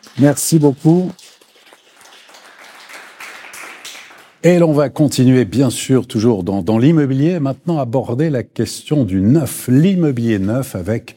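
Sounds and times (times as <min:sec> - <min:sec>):
audience applause for a guest at a real-estate discussion event: 0:00.0 - 0:04.4
speech: 0:00.1 - 0:01.2, 0:04.4 - 0:11.1.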